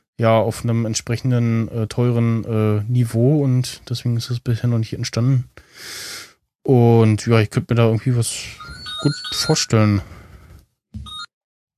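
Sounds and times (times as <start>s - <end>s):
speech: 0.2s - 10.2s
short electronic telephone ring: 8.6s - 9.8s, 11.0s - 11.3s.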